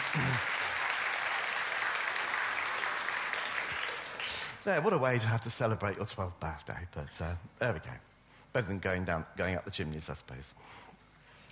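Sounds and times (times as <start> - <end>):
room full of people applauding: 0.0 - 4.6
speech: 4.6 - 11.0.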